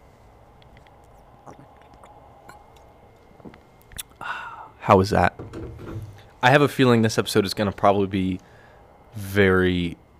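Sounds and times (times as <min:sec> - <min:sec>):
low steady hum: 0:00.0 - 0:10.1
person sipping beer close to the microphone: 0:00.6 - 0:02.9, 0:03.9 - 0:04.8
speech: 0:01.5 - 0:01.7, 0:04.8 - 0:05.5, 0:06.4 - 0:08.5, 0:09.2 - 0:10.0.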